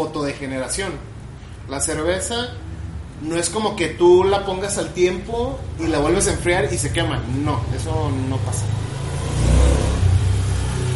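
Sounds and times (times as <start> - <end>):
speech: 0.0 - 9.5
truck or motorcycle engine revving: 8.5 - 10.9.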